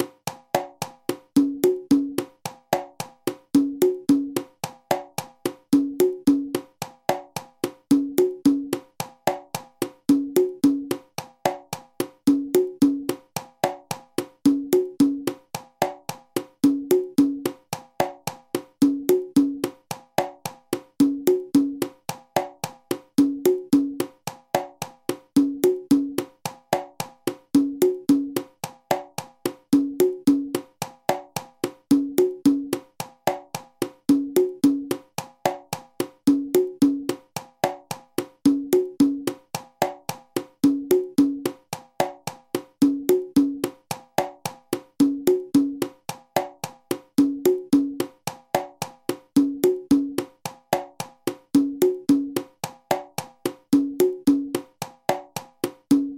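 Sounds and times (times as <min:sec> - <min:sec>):
congas playing a Cuban bolero: 0:00.0 - 0:56.1.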